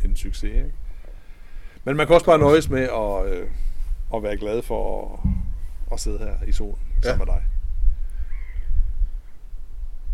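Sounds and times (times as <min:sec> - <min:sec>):
steady low outdoor rumble: 0:00.0 - 0:10.1
speech: 0:00.2 - 0:00.9, 0:01.8 - 0:05.3, 0:05.9 - 0:07.6
bird cawing call: 0:00.9 - 0:01.8, 0:08.0 - 0:09.5.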